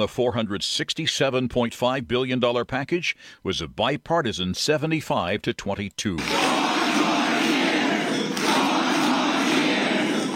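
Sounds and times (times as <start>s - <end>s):
speech: 0.0s - 7.0s
large rally crowd roaring and cheering: 6.2s - 10.3s.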